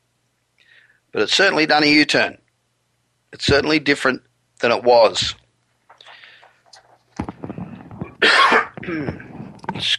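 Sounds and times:
speech: 0:01.1 - 0:02.4, 0:03.3 - 0:05.4, 0:08.2 - 0:09.2, 0:09.8 - 0:09.9
harsh raspy coughing: 0:08.0 - 0:09.3.

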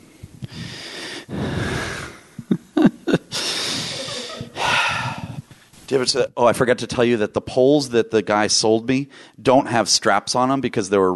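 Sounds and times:
person breathing in deeply: 0:00.0 - 0:02.5, 0:03.3 - 0:05.6
laughter: 0:02.5 - 0:05.3
speech: 0:05.9 - 0:11.1.

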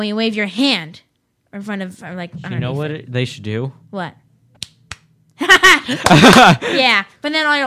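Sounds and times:
speech: 0:00.0 - 0:04.2, 0:05.9 - 0:07.6
sharp hand claps: 0:04.6 - 0:05.1, 0:06.0 - 0:06.6
laughter: 0:05.4 - 0:06.8.

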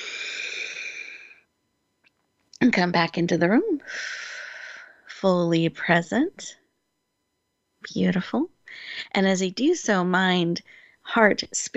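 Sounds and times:
long breath taken during a guided relaxation exercise: 0:00.0 - 0:01.4, 0:03.8 - 0:05.1
speech: 0:02.6 - 0:04.3, 0:05.2 - 0:06.6, 0:07.8 - 0:11.7.

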